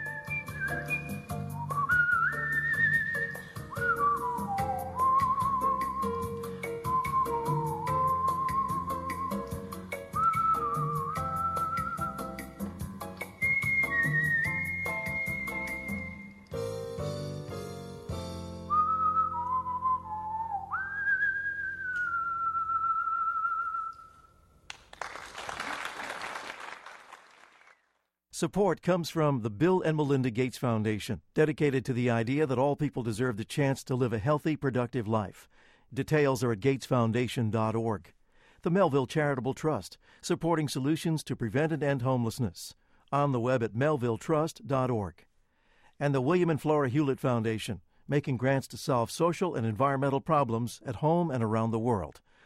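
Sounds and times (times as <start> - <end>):
person whistling a bouncy melody with sliding pitches: 0.0 - 16.6, 18.6 - 24.3
steady rhythmic musical backing: 0.0 - 18.7
burst of applause-like noise: 24.7 - 28.0
speech: 28.4 - 45.3, 46.0 - 52.3.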